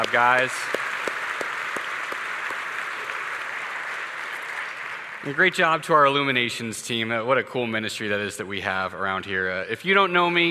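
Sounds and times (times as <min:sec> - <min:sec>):
speech: 0:00.0 - 0:00.8, 0:05.2 - 0:10.4
audience applause for children who told and sang the Christmas story: 0:00.0 - 0:06.3.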